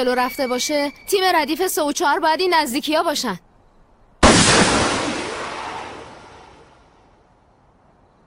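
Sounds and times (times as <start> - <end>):
speech: 0.0 - 3.5
smoke flare hissing whoosh: 4.2 - 6.8
smoke flare launch bang: 4.2 - 6.8.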